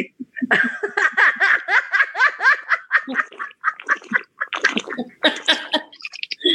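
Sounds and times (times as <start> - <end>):
laughter: 0.0 - 6.5
woman slurping water from a water bottle: 3.1 - 6.5.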